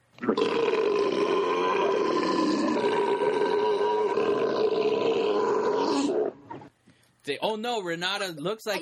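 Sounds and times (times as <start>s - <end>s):
long loud burp: 0.2s - 6.4s
speech: 7.4s - 8.7s.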